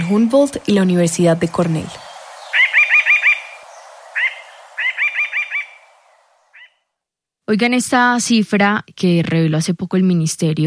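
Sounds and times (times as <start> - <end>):
Colombian mountain jay song: 0.0 - 6.8
speech: 0.1 - 2.1, 7.5 - 10.6.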